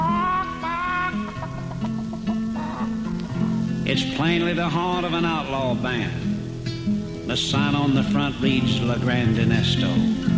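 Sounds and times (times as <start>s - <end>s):
chickens clucking and squawking in a coop: 0.1s - 3.8s
speech: 3.9s - 6.3s, 7.3s - 10.2s.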